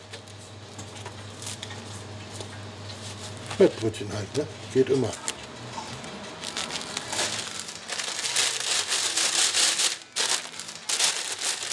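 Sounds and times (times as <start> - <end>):
speech: 3.6 - 5.3
plastic bag being twisted shut, crinkling and crackling: 6.0 - 11.7.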